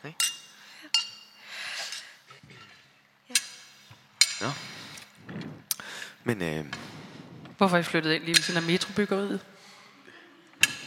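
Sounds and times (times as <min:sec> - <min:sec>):
soft breathy noise: 0:00.0 - 0:08.2, 0:08.9 - 0:10.8
wine glasses clinking in a toast: 0:00.2 - 0:02.0
speech: 0:04.4 - 0:04.6, 0:06.3 - 0:06.9, 0:07.6 - 0:09.5.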